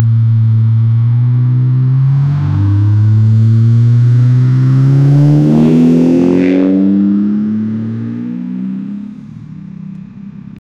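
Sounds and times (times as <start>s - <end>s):
sports car engine revving while speeding away: 0.0s - 10.6s.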